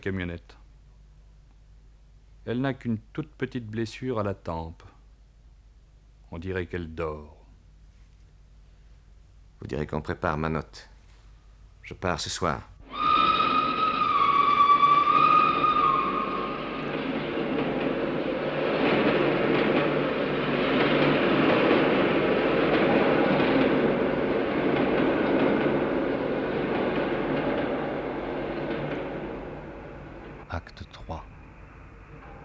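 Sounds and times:
speech: 0.0s - 0.6s, 2.4s - 4.9s, 6.3s - 7.4s, 9.6s - 10.9s, 11.9s - 13.0s
high whistle-like tones of trains at a railway station at night: 12.8s - 18.5s
rolling rail cars rumbling at a railway station at night: 12.8s - 32.4s.

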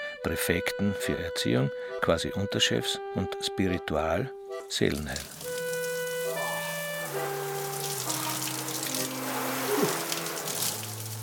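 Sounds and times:
speech: 0.2s - 5.4s
hot shower water running in a shower room: 4.9s - 11.2s.

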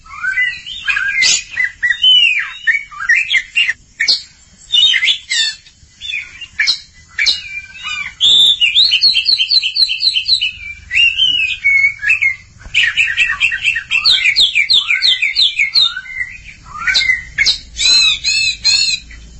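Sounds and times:
Oriental magpie-robin song: 0.0s - 19.3s.

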